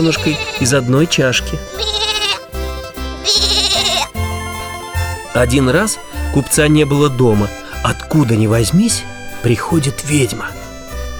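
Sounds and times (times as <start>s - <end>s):
speech: 0.0s - 2.1s, 3.2s - 3.5s, 5.4s - 10.6s
young goat bleating: 0.0s - 8.5s.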